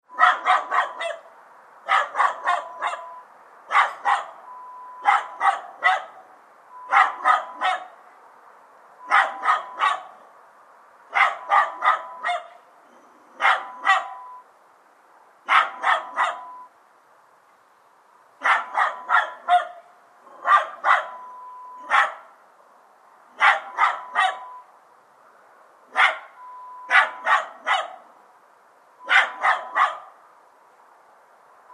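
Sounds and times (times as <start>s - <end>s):
small dog barking: 0.1s - 1.3s, 1.9s - 6.3s, 6.9s - 8.0s, 9.0s - 10.2s, 11.1s - 12.6s, 13.4s - 14.3s, 15.5s - 16.6s, 18.4s - 22.3s, 23.4s - 24.6s, 25.9s - 28.1s, 29.0s - 30.2s.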